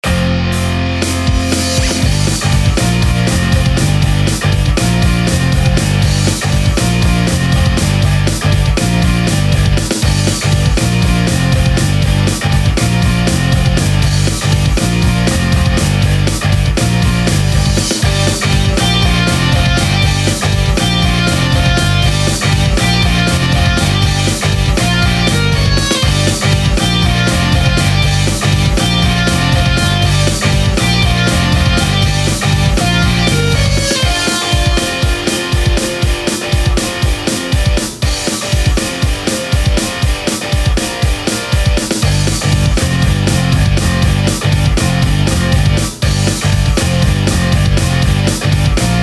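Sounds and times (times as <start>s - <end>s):
funny punk rock music: 0.0s - 49.0s.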